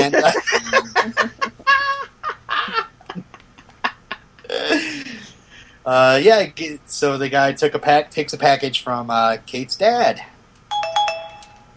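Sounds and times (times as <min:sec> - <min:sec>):
laughter: 0:00.0 - 0:05.4
speech: 0:05.9 - 0:10.3
phone notification tone of bright chiming notes: 0:10.7 - 0:11.7.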